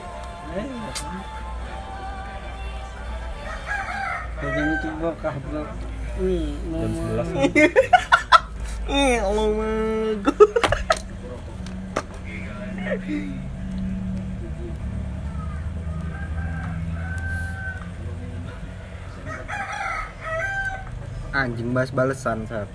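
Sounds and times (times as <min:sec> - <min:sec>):
faint murmuring voices: 0:00.0 - 0:22.7
speech: 0:00.5 - 0:01.5, 0:04.4 - 0:08.2, 0:08.9 - 0:10.3, 0:12.9 - 0:13.5, 0:21.4 - 0:22.7
rooster crowing: 0:01.2 - 0:05.7, 0:15.1 - 0:21.2
laughter: 0:04.9 - 0:15.9.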